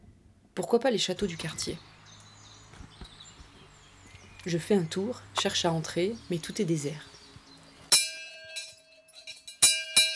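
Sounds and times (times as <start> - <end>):
speech: 0.6 - 1.9, 4.4 - 7.1
bell struck at a château: 7.9 - 10.1.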